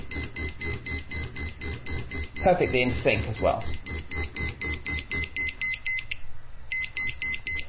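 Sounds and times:
low buzzing vibration of a liquid level indicator: 0.0 - 5.8
liquid level indicator on a cup beeping: 0.0 - 7.6
speech: 2.4 - 3.8.

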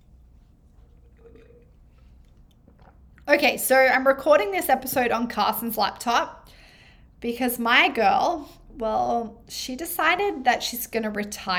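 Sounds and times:
low hum: 0.0 - 11.5
person sipping hot tea: 0.2 - 3.3
slurp: 0.4 - 3.3
soft wet mouth and swallowing sounds: 0.7 - 3.3
speech: 3.3 - 6.5, 7.2 - 11.5.

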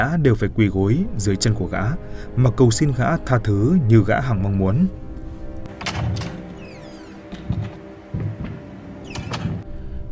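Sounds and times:
speech: 0.0 - 5.0
shop door rattling and sliding open with mechanical scraping: 5.7 - 9.6
dull knocks: 5.8 - 9.6.

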